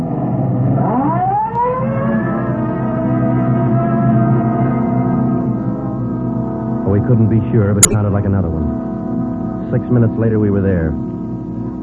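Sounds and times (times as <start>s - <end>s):
police car engine accelerating: 0.0s - 9.6s
police car siren wailing: 0.2s - 5.4s
speech: 7.1s - 8.9s, 9.7s - 11.1s.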